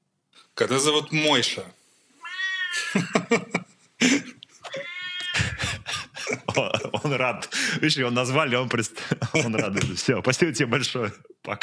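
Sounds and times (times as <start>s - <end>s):
speech: 0.6s - 1.8s, 2.9s - 3.6s, 7.1s - 11.6s
cat meowing: 2.2s - 3.0s, 4.6s - 5.6s
laughter: 2.7s - 8.1s, 8.8s - 10.2s.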